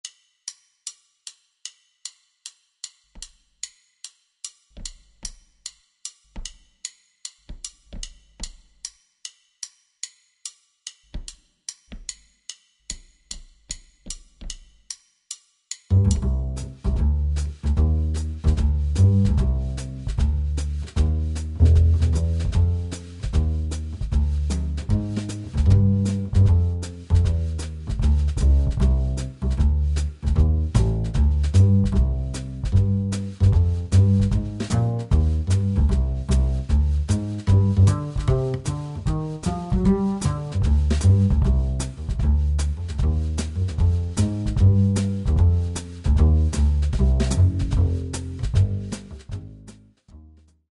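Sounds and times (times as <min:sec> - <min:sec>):
song without piano: 0:15.9 - 0:49.6.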